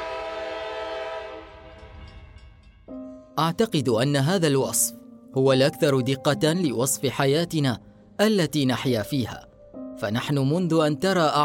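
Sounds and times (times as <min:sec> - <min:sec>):
train horn: 0:00.0 - 0:02.3
train passing: 0:00.0 - 0:03.0
speech: 0:03.4 - 0:11.4.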